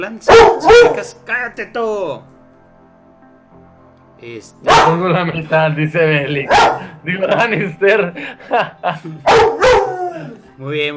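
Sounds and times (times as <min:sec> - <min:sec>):
speech: 0:00.0 - 0:02.3, 0:04.2 - 0:09.6, 0:10.2 - 0:10.9
dog barking: 0:00.3 - 0:01.1, 0:04.6 - 0:05.0, 0:06.5 - 0:07.0, 0:09.2 - 0:10.2
laughter: 0:06.7 - 0:10.4.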